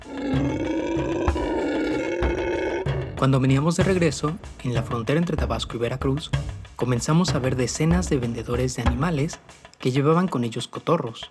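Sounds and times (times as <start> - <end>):
black howler monkey howling in Tabasco Mexico: 0.0 - 3.9
speech: 3.2 - 11.2.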